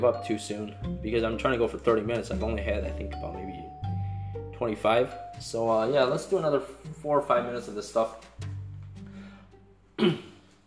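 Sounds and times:
speech: 0.0 - 3.5, 4.6 - 8.3, 10.0 - 10.3
person with a cold coughing: 10.0 - 10.4.

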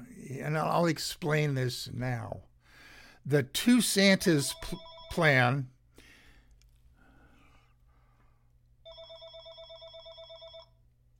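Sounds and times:
speech: 0.4 - 2.5, 3.2 - 5.7
telephone ringing with an incoming call: 4.4 - 5.5, 8.8 - 10.8.

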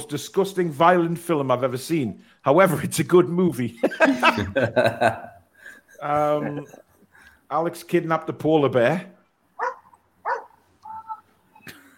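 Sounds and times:
speech: 0.0 - 5.3, 6.0 - 6.8, 7.5 - 9.2
laughter: 3.8 - 6.9
dog barking: 9.6 - 10.6
dog whining: 9.6 - 11.3.

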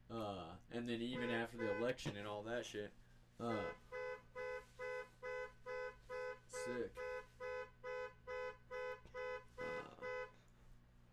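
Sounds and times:
speech: 0.1 - 3.8, 6.6 - 7.0
car alarm beeping outside: 1.1 - 2.2, 3.5 - 10.4.

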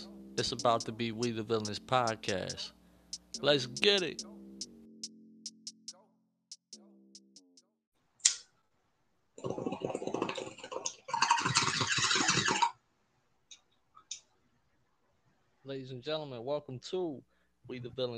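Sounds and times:
speech: 0.4 - 4.3, 15.7 - 18.1
bong rip bubbling: 9.4 - 12.8.

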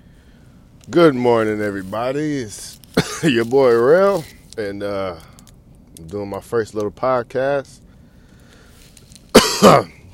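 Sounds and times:
speech: 0.9 - 5.3, 6.0 - 7.8, 9.6 - 10.0
person under the weather coughing: 2.9 - 3.5, 9.3 - 10.0.

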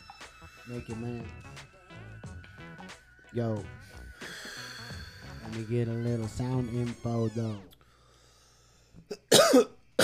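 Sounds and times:
speech: 0.7 - 1.7, 2.9 - 3.9, 5.5 - 7.7
person coughing into a microphone at a freestyle rap sound check: 9.1 - 10.0.

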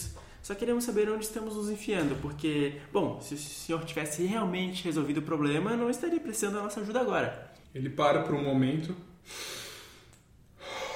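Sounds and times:
speech: 0.5 - 9.6
man breathing heavily after running: 9.2 - 10.9.

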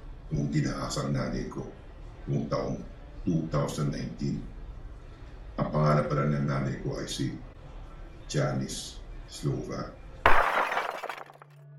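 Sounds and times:
speech: 0.3 - 4.5, 5.7 - 7.5, 8.3 - 10.0
glass beer bottle dropped and shattering on the floor: 10.3 - 11.5.

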